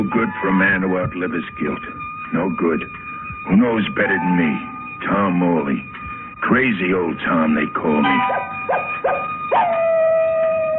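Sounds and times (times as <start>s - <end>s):
speech: 0.0s - 8.8s
coyote yipping and howling: 8.0s - 10.7s.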